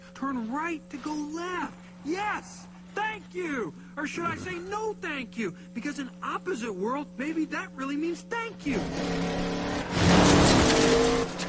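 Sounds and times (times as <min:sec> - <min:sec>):
speech: 0:00.2 - 0:10.3
car tires squealing: 0:08.7 - 0:11.4.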